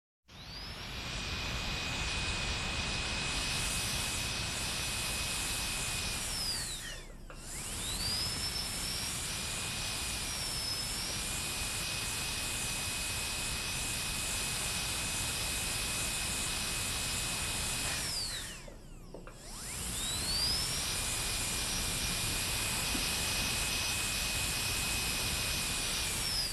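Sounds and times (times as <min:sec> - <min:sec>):
dental drill: 0:00.3 - 0:26.5.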